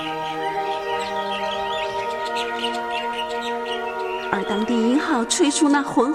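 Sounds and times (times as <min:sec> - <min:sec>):
woodwind instruments playing a cheerful rhythm: 0:00.0 - 0:05.4
speech: 0:04.3 - 0:06.1.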